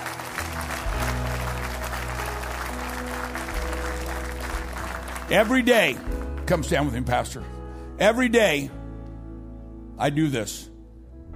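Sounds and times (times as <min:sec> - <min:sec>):
large crowd applauding: 0:00.0 - 0:07.1
speech: 0:05.3 - 0:08.8, 0:10.0 - 0:10.7.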